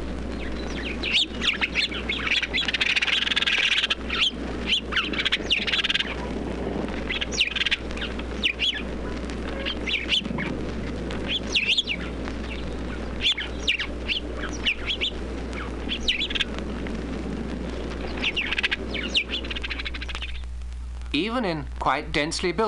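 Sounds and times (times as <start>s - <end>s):
flock of house sparrows chirping: 0.0s - 20.6s
steady low hum: 0.0s - 22.6s
speech: 21.4s - 22.6s.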